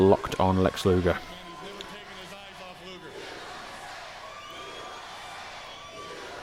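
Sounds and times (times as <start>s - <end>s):
speech: 0.0s - 1.3s
large arena crowd roaring and cheering: 0.0s - 6.4s
people shouting in an arena crowd: 1.0s - 6.4s
whistles from an arena crowd: 4.2s - 6.4s.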